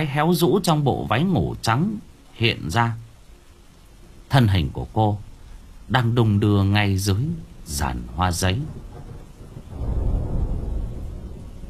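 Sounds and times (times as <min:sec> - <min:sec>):
speech: 0:00.0 - 0:03.0, 0:04.3 - 0:05.3, 0:05.9 - 0:08.8
thunder rumbling during a rainstorm: 0:05.3 - 0:11.6.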